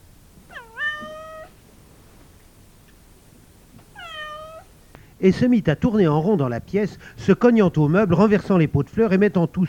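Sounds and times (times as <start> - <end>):
cat yowling after dose of elixir: 0.5 - 1.6, 3.9 - 4.7
speech: 5.2 - 9.6.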